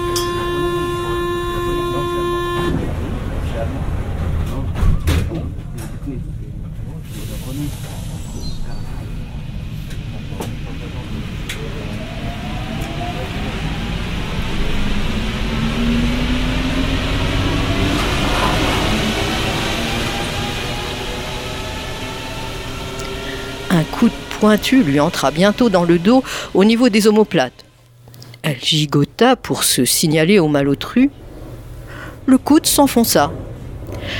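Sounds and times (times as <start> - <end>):
metro door warning tone: 0.0 - 3.0
metro train motor whine: 0.0 - 4.6, 7.2 - 27.4
metro train doors thudding shut: 4.4 - 6.0
speech: 24.4 - 27.6, 28.5 - 31.2, 32.3 - 33.4.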